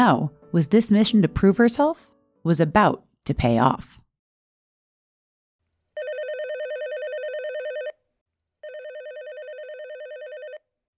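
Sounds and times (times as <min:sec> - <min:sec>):
speech: 0:00.0 - 0:04.0
landline telephone ringing with a warbling trill: 0:06.0 - 0:08.0, 0:08.6 - 0:10.6.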